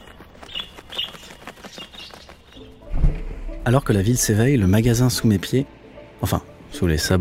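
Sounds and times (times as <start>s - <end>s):
sparrows chirping: 0.0s - 2.9s
speech: 3.6s - 7.1s.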